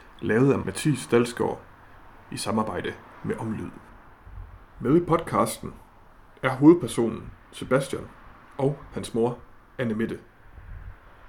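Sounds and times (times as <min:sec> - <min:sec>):
traffic of cars passing in Rigskov north of Aarhus: 0:00.0 - 0:11.2
speech: 0:00.2 - 0:01.7, 0:02.3 - 0:03.8, 0:04.8 - 0:05.8, 0:06.4 - 0:10.3.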